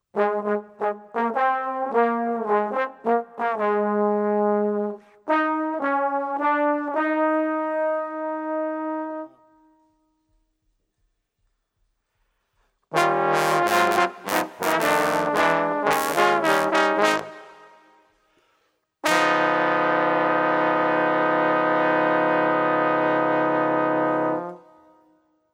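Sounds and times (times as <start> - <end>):
trombone: 0.1 - 9.4, 12.9 - 18.0, 19.0 - 24.8.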